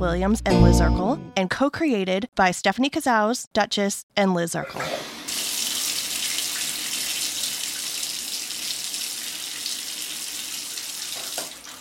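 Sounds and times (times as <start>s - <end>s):
speech: 0.0s - 5.1s
shower water running: 4.7s - 11.7s.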